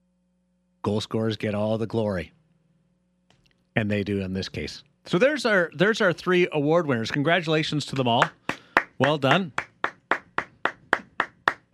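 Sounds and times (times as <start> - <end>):
speech: 0.8 - 2.4, 3.8 - 8.4, 9.0 - 9.6
person clapping hands in a studio: 7.1 - 7.3, 7.9 - 11.7.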